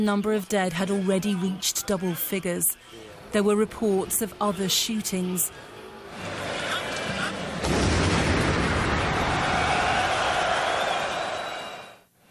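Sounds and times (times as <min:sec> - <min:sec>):
speech: 0:00.0 - 0:06.5
large stadium crowd roaring at a football match: 0:05.9 - 0:12.1
bomb explosion during a football match: 0:07.6 - 0:09.8.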